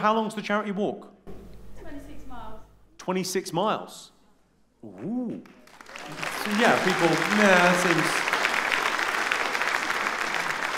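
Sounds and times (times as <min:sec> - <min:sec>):
speech: 0:00.0 - 0:01.2, 0:03.1 - 0:04.2, 0:04.8 - 0:08.3
audience applauding: 0:05.4 - 0:10.7.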